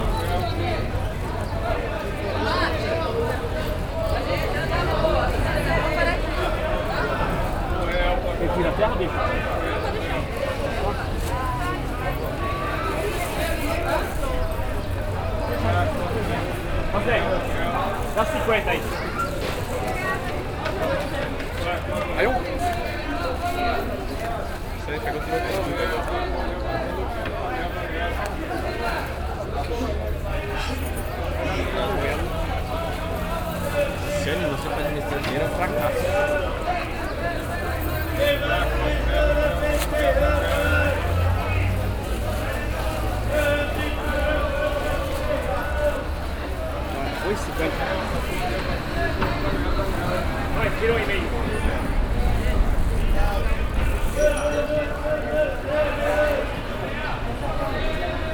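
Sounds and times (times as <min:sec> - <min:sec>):
market ambience in Brazil: 0:00.0 - 0:58.3.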